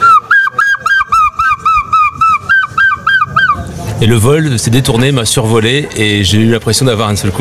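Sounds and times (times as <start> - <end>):
human voice imitating a gull's squawking call: 0.0 - 3.6
speech: 4.0 - 7.3.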